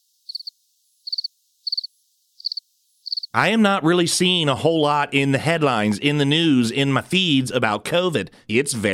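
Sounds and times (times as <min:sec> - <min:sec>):
crickets chirping: 0:00.0 - 0:03.4
speech: 0:03.4 - 0:08.9.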